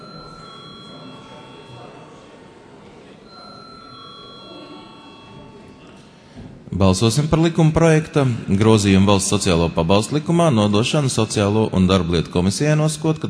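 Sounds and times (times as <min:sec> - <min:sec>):
electric bell ringing in a parliament chamber before a vote: 0:00.0 - 0:02.3, 0:03.2 - 0:05.9
murmur of voices in a parliament chamber: 0:00.0 - 0:13.2
speech: 0:06.7 - 0:13.2.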